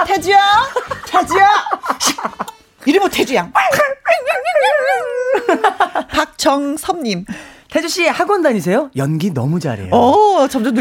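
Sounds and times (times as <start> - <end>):
speech: 0.2 - 1.6, 3.1 - 3.9, 6.4 - 10.7
person imitating a dog yipping, whining and barking: 3.6 - 5.6.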